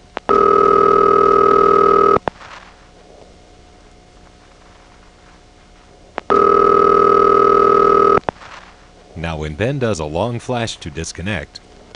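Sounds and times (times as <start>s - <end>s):
telephone exchange ringing tone on the line: 0.3s - 2.2s, 6.3s - 8.2s
speech: 9.5s - 11.6s.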